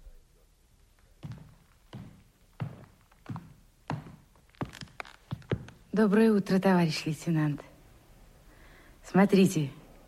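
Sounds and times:
nurse's heel strikes on a hard corridor floor: 1.2 - 6.0
speech: 6.0 - 7.7, 9.1 - 9.8.

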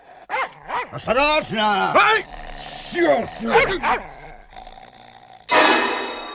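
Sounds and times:
dog growling low and rough: 0.0 - 5.6
dog letting out a loud harsh bark: 0.3 - 4.5
speech: 0.9 - 4.2.

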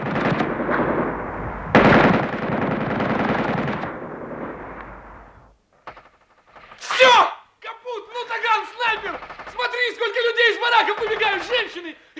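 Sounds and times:
machine gun on a roof firing at artillery gun crews: 0.0 - 4.6, 5.8 - 7.0, 8.8 - 9.9, 10.6 - 11.8
people shouting: 6.8 - 11.8.

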